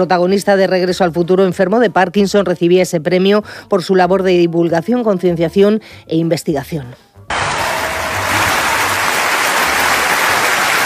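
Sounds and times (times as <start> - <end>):
speech: 0.0 - 7.4
large gala audience applauding: 7.3 - 10.8.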